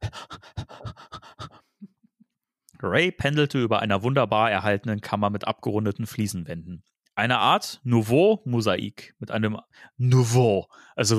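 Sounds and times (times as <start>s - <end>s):
reader imitating a character's rapid heavy panting: 0.0s - 1.8s
speech: 2.8s - 11.1s.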